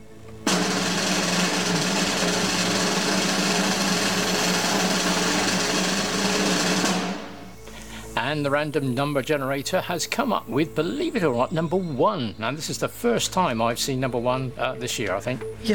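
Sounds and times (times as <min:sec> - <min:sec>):
drum roll before a prize-draw number is revealed: 0:00.4 - 0:07.7
speech: 0:08.3 - 0:15.7.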